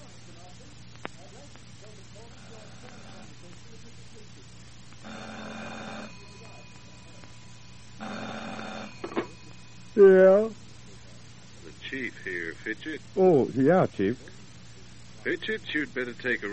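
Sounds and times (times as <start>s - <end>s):
steady low hum: 0.0s - 16.5s
telephone ringing at night: 5.0s - 10.5s
speech: 10.0s - 10.6s, 12.1s - 14.3s, 15.2s - 16.5s.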